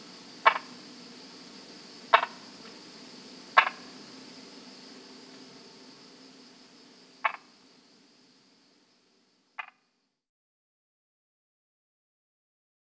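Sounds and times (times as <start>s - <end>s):
Brauer's tree frog clicking croaks: 0.4s - 0.8s, 2.1s - 2.4s, 3.6s - 4.0s, 7.2s - 7.5s, 9.6s - 9.9s.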